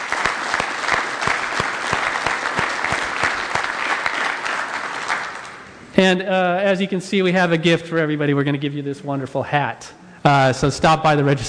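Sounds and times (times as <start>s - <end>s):
audience clapping: 0.0s - 5.8s
speech: 6.0s - 11.4s.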